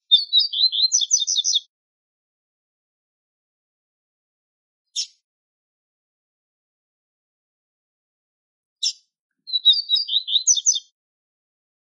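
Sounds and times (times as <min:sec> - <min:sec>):
male double-collared seedeater fast twittering song: 0:00.0 - 0:01.7, 0:05.0 - 0:05.2, 0:08.8 - 0:10.9.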